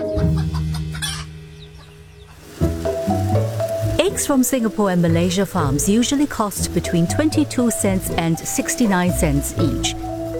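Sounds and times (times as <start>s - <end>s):
steady tonal hum: 0.0s - 10.3s
hens clucking on an egg farm: 0.1s - 10.3s
speech: 4.2s - 10.1s.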